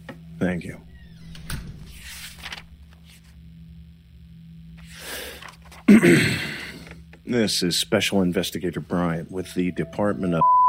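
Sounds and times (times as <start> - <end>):
speech: 0.4 - 0.9, 5.9 - 6.5, 7.3 - 10.6
door closing thud: 0.8 - 2.8.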